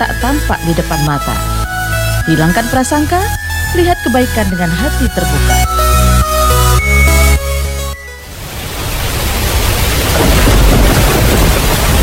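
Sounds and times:
speech: 0.2s - 1.6s, 2.3s - 5.7s
musical jingle: 2.2s - 8.4s
heavy rain: 7.6s - 12.0s.

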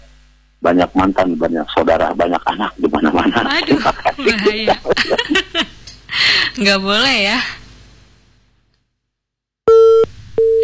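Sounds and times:
speech: 0.6s - 7.6s
laughter: 1.0s - 6.6s
telephone busy tone after a call disconnects: 9.7s - 10.6s.

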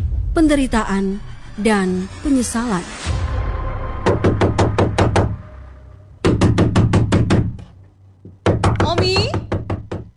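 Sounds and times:
speech: 0.4s - 3.1s
low steady hum: 0.4s - 10.1s
knocking on a door: 4.1s - 5.4s, 6.2s - 10.1s.

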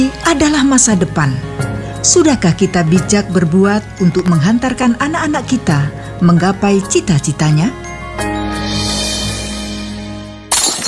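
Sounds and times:
speech: 0.0s - 8.4s
steady music playing: 0.0s - 10.8s
drinking glass shattering as a child breaks it: 10.5s - 10.8s.

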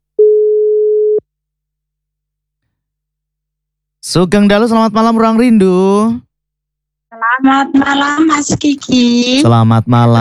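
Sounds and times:
telephone line tone while calling back: 0.2s - 1.2s
speech: 4.1s - 6.3s, 7.4s - 10.1s.

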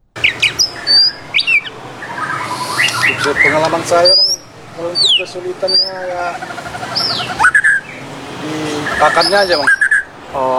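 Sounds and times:
caged farm-bred white-rumped shama chirping and whistling: 0.0s - 10.5s
steady hiss: 0.0s - 10.5s
speech: 3.1s - 7.6s, 8.4s - 10.5s.

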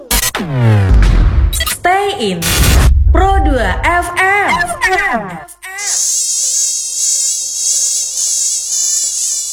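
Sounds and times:
speech: 0.4s - 1.0s, 2.0s - 6.2s
mosquitoes whining in a bedroom: 5.6s - 9.5s.

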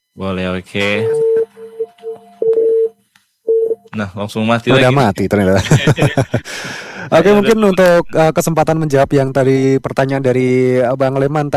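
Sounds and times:
speech: 0.2s - 1.3s, 4.0s - 11.5s
electronic telephone line tones as an incoming phone call is picked up: 0.8s - 3.9s
laughter: 4.7s - 8.3s.

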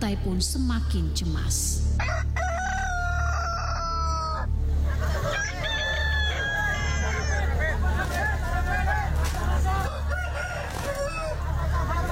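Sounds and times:
speech: 0.0s - 2.4s
roosters crowing as they are released into a fighting arena: 2.0s - 12.1s
laughter: 4.6s - 12.1s
hubbub of crowd chatter: 6.6s - 12.1s.

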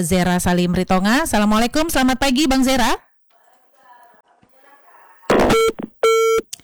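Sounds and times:
speech: 0.0s - 3.1s
brief garbled noise: 5.3s - 6.4s
phone line busy tone beeps: 5.3s - 6.4s.

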